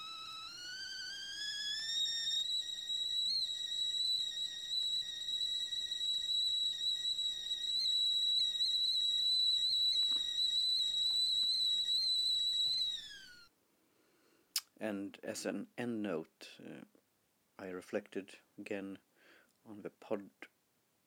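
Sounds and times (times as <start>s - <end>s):
tea kettle whistling: 0.0s - 13.5s
speech: 14.8s - 17.0s, 17.6s - 20.5s.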